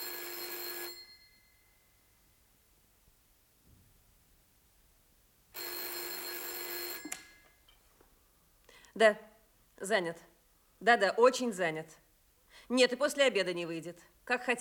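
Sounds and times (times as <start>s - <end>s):
telephone ringing with electric bell: 0.0s - 1.7s, 5.6s - 7.6s
speech: 9.0s - 12.0s, 12.6s - 14.6s.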